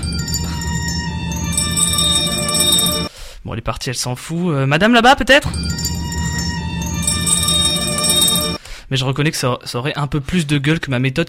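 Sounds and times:
bells ringing: 0.0s - 3.1s, 5.6s - 8.6s
speech: 3.5s - 6.0s, 8.9s - 11.2s.

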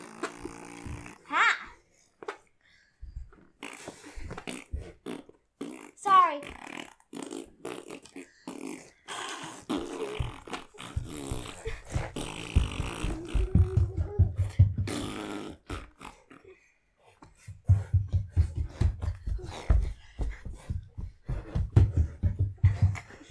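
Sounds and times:
people making mouth-made fart noises: 0.0s - 2.5s, 3.1s - 23.2s
quick vocal exclamations: 4.5s - 16.4s
people giggling and laughing: 17.8s - 23.2s.

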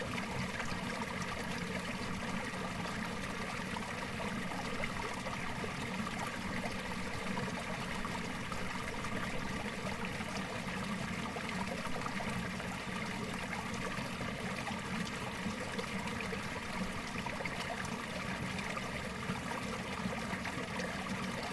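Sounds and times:
water running along an old stone canal: 0.0s - 21.5s.

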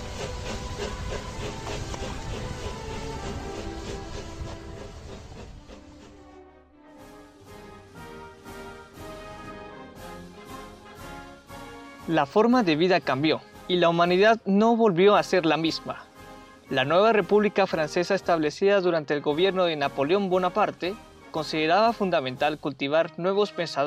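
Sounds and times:
steam train chuffing on rails: 0.0s - 18.6s, 19.2s - 22.7s
speech: 12.1s - 16.1s, 16.7s - 23.8s.

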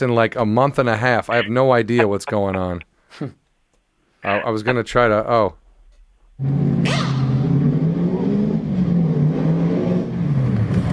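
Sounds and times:
speech: 0.0s - 3.4s, 4.2s - 5.6s, 6.4s - 7.1s
NASCAR race car engine revving: 4.7s - 10.9s.

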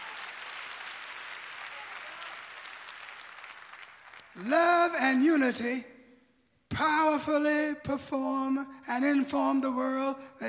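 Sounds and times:
audience clapping hands in praise: 0.0s - 4.5s
speech: 4.4s - 5.9s, 6.8s - 10.4s.

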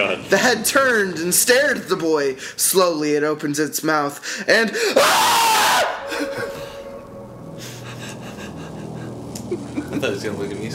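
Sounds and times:
speech: 0.0s - 6.6s, 10.0s - 10.7s
two people screaming shrilly: 4.9s - 7.4s
breathy sounds: 5.9s - 9.3s.

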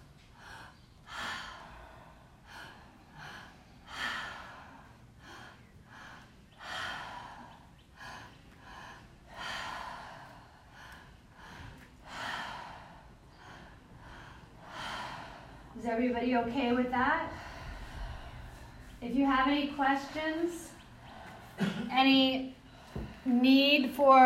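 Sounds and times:
person breathing with two inhales and a mouth exhale during a guided exercise: 0.0s - 16.0s, 16.6s - 23.4s
speech: 15.8s - 17.3s, 19.1s - 20.6s, 22.0s - 22.5s, 23.3s - 24.2s.

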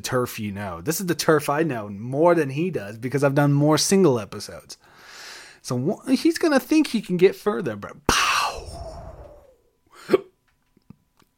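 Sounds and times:
speech: 0.0s - 4.9s, 5.6s - 8.2s
soft breathy sound: 8.4s - 10.2s
person hiccuping: 10.0s - 10.4s.

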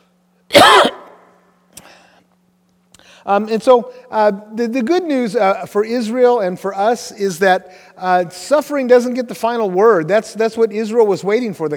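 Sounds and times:
faint steady hum: 0.0s - 11.7s
single loud cough: 0.5s - 1.2s
speech: 3.2s - 11.7s.

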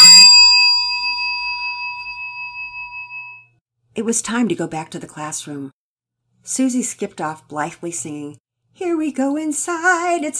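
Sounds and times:
school bell rung by a teacher: 0.0s - 3.4s
speech: 4.0s - 5.8s, 6.5s - 10.3s.

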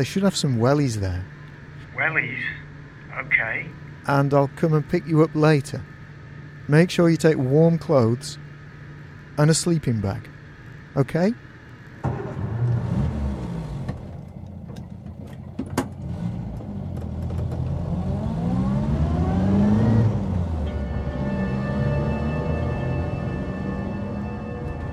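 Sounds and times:
speech: 0.0s - 1.4s, 2.0s - 5.9s, 6.7s - 8.4s, 9.4s - 10.3s, 11.0s - 11.4s
car engine droning on a winding road over Snake Pass in cold showery weather: 0.0s - 24.9s.

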